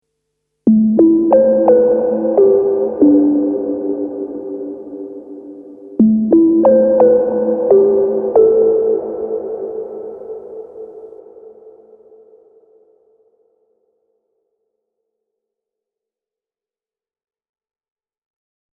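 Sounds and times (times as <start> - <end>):
resonant noise pluck with reverb: 0.7 - 11.0.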